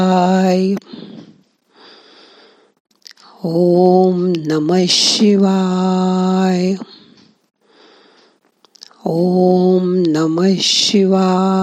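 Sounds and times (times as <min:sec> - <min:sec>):
speech: 0:00.0 - 0:00.9, 0:03.4 - 0:07.0, 0:09.0 - 0:11.6
inhaled breath taken before chanting a mantra: 0:00.8 - 0:02.8, 0:06.9 - 0:08.5.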